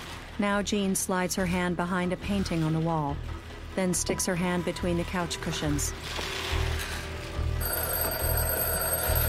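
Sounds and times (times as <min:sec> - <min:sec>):
speech: 0:00.4 - 0:06.4
telephone bell ringing: 0:07.6 - 0:09.2.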